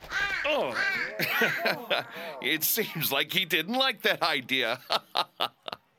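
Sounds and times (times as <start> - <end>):
crow cawing: 0.0 - 2.4
laughter: 0.5 - 3.1, 4.5 - 5.9
speech: 0.5 - 5.6.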